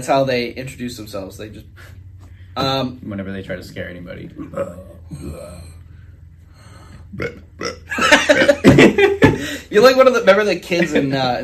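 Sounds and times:
speech: 0.0s - 2.0s, 2.6s - 5.7s, 7.1s - 11.4s
person burping: 4.4s - 5.8s, 7.1s - 8.6s.

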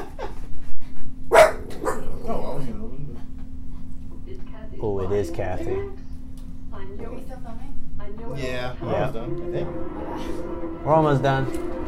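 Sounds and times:
steady low hum: 1.0s - 11.8s
female dog barking and yelping: 1.3s - 2.6s
speech: 5.1s - 6.0s, 8.4s - 11.8s.

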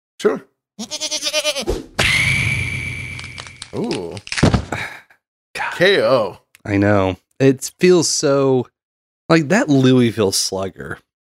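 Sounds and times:
speech: 0.2s - 1.9s, 3.7s - 4.9s, 5.8s - 11.0s
goat bleating: 0.8s - 1.7s.

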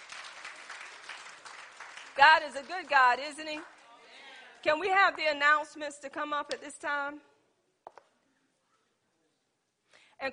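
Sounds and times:
audience clapping in sustained dense applause: 0.0s - 4.7s
speech: 2.2s - 3.8s, 4.6s - 7.3s, 10.2s - 10.3s.

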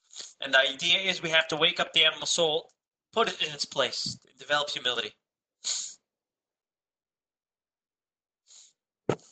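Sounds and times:
speech: 0.4s - 5.8s
attempted sneeze that doesn't come out: 5.6s - 6.0s.

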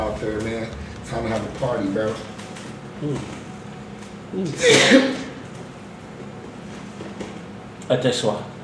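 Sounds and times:
speech: 0.2s - 2.4s, 3.0s - 3.4s, 4.3s - 5.2s, 7.9s - 8.6s
person sneezing: 4.4s - 5.4s.

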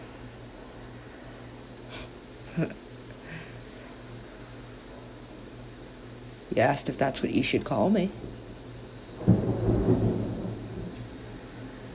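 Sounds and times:
faint rain hiss: 0.0s - 11.9s
speech: 2.6s - 2.8s, 6.5s - 8.4s
thunder rumbling: 8.2s - 11.9s.

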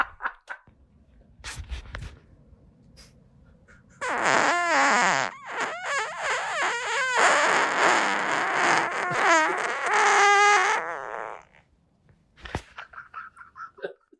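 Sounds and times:
long squealing fart: 4.0s - 11.6s.

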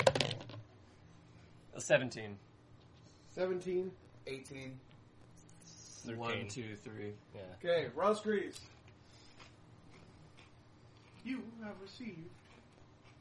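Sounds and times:
dice clattering and skittering across a surface: 0.0s - 0.6s
speech: 1.8s - 2.5s, 3.4s - 4.9s, 6.0s - 8.8s, 11.3s - 12.4s.

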